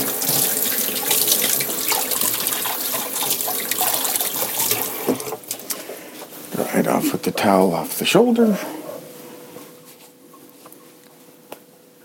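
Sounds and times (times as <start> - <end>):
hands washed under running tap water: 0.0 - 5.8
speech: 6.9 - 8.8.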